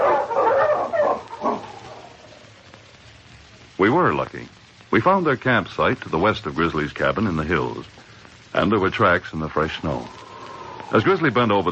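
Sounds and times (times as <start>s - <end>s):
pack of sled dogs barking and yipping: 0.0s - 2.5s
speech: 3.9s - 10.2s, 10.9s - 11.7s.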